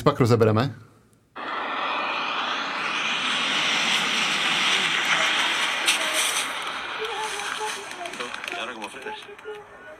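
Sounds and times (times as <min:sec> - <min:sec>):
speech: 0:00.0 - 0:00.9
roar of wind and rushing air from a speed skier: 0:01.4 - 0:08.6.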